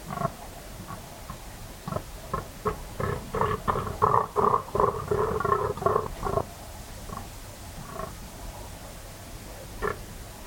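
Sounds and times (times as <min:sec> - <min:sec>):
fallow deer buck groaning in the rut at night in West Dorset: 0:00.0 - 0:06.5.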